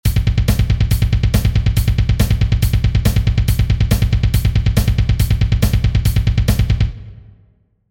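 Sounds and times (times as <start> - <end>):
metal drum pattern: 0.0 - 7.2.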